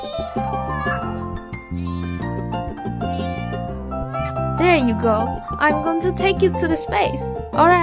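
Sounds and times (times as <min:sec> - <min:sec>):
cat meowing: 0:00.0 - 0:02.3, 0:03.0 - 0:04.4
speech: 0:04.7 - 0:07.8.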